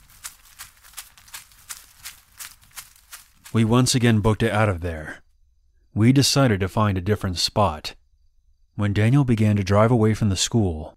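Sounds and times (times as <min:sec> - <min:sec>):
footsteps running through grass: 0:00.0 - 0:03.9
speech: 0:03.5 - 0:05.2, 0:06.0 - 0:08.0, 0:08.8 - 0:10.9.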